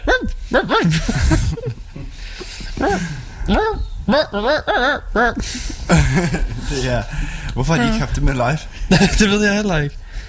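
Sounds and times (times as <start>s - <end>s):
speech: 0.5s - 1.6s, 4.1s - 10.0s
laughter: 0.7s - 2.8s, 5.2s - 6.7s, 8.9s - 9.2s
synthetic pitched dog barks from a keyboard sound setting: 3.5s - 5.3s.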